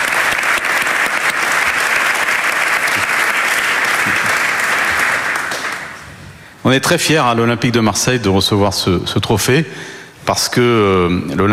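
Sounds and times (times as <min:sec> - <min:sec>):
large audience clapping: 0:00.0 - 0:06.2
speech: 0:06.7 - 0:11.5.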